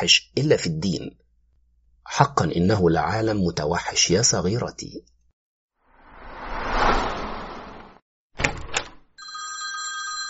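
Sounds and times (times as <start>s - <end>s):
speech: 0.0s - 1.2s, 2.1s - 5.1s
rushing noise: 5.9s - 8.0s
apartment door opening: 8.4s - 9.1s
telephone bell ringing: 9.2s - 10.2s.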